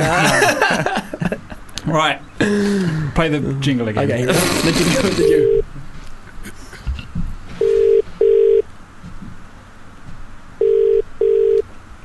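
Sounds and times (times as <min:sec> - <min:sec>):
laughter: 0:00.0 - 0:01.8, 0:04.0 - 0:07.0
speech: 0:01.9 - 0:05.6
telephone ringing in double-burst pattern: 0:05.2 - 0:05.6, 0:07.6 - 0:08.6, 0:10.6 - 0:11.6.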